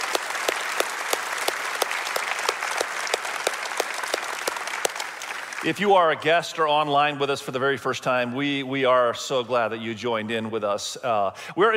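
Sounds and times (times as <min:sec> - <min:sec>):
large church audience clapping steadily and loudly: 0:00.0 - 0:06.2
speech: 0:05.6 - 0:11.7.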